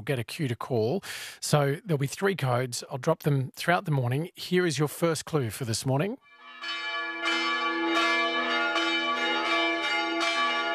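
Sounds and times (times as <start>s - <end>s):
speech: 0.0s - 6.8s
peal of wedding church bells ringing: 6.3s - 10.7s.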